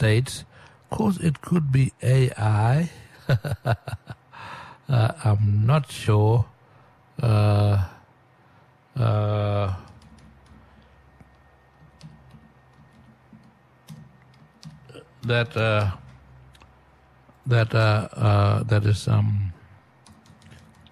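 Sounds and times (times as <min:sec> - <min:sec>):
speech: 0:00.0 - 0:04.2, 0:04.9 - 0:06.5, 0:07.2 - 0:08.0, 0:09.0 - 0:09.9, 0:15.2 - 0:16.0, 0:17.5 - 0:19.5
typing on a computer keyboard: 0:09.8 - 0:16.2, 0:20.0 - 0:20.9.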